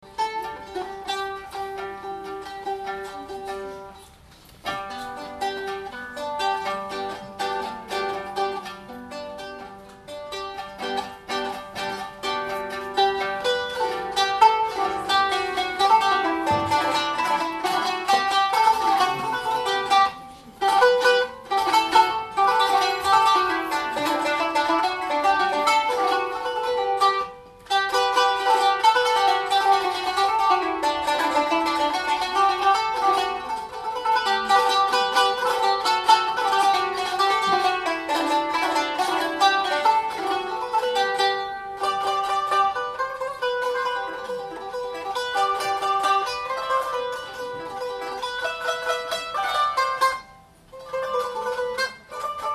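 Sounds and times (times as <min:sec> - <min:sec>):
qanun: 0:00.0 - 0:52.5.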